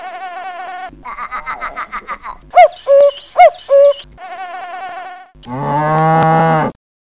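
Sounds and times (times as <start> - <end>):
laughter: 0.0 - 2.9
farm animal calls: 2.6 - 4.1
cow mooing: 5.4 - 6.8.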